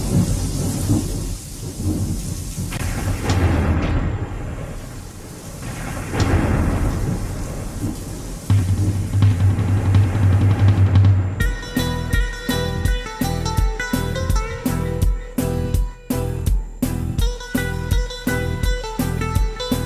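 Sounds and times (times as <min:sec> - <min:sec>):
low rolling thunder rumbling: 0:00.0 - 0:13.4
heavy rain hissing: 0:00.0 - 0:19.8.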